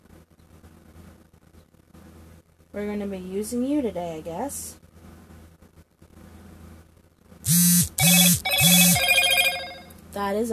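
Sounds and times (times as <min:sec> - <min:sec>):
speech: 0:02.7 - 0:04.8, 0:10.2 - 0:10.5
low hum: 0:07.5 - 0:09.9
phone ringing with electronic trills: 0:07.5 - 0:09.9.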